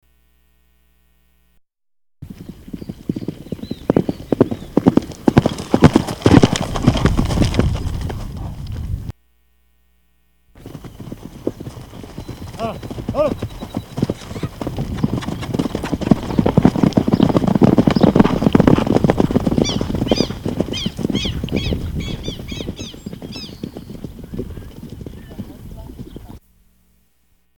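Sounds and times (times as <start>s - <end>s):
horse galloping and arriving: 2.2s - 9.1s, 10.6s - 26.4s.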